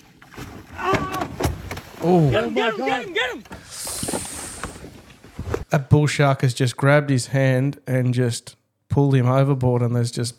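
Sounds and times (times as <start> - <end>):
water lapping and splashing against small fishing boat hull on open water: 0.0 - 5.2
speech: 2.0 - 3.6, 5.7 - 10.3.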